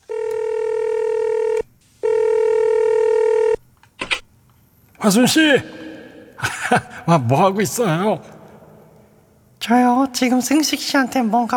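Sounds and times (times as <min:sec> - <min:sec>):
electronic phone keypad dialing tones: 0:00.0 - 0:04.2
speech: 0:05.0 - 0:05.8, 0:06.7 - 0:08.3, 0:09.7 - 0:11.5
laughter: 0:05.0 - 0:09.2.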